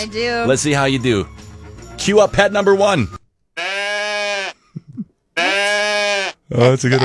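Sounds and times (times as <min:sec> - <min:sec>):
speech: 0:00.0 - 0:01.4, 0:02.0 - 0:03.2, 0:06.5 - 0:07.0
pet goat bleating: 0:03.6 - 0:07.0
faint low grunts: 0:04.7 - 0:07.0.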